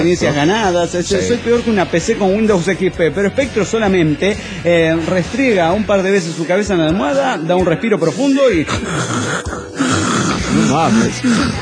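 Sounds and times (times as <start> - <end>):
speech: 0.0 - 9.8, 10.7 - 11.6
person imitating snoring: 8.6 - 11.6.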